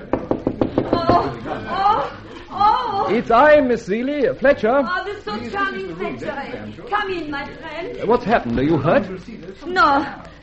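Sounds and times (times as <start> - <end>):
sharp knocks on a wooden door of a room: 0.1 - 1.2
laughter: 0.8 - 3.2
speech: 3.1 - 10.3.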